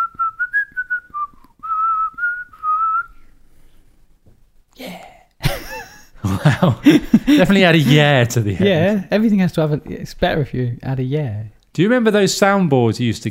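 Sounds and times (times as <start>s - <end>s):
person whistling a short bright tune: 0.0s - 3.3s
laughter: 5.4s - 9.0s
speech: 6.6s - 13.3s.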